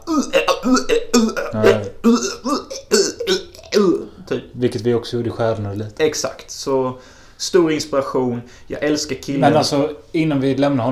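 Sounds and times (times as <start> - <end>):
voice imitating choppy retching and gagging noises: 0.0 - 4.4
speech: 4.8 - 10.9.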